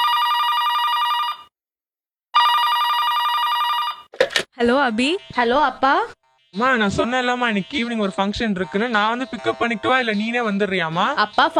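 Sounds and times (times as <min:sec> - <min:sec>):
bright trilling electronic telephone ringing: 0:00.0 - 0:01.5, 0:02.4 - 0:04.5
speech: 0:04.6 - 0:11.5.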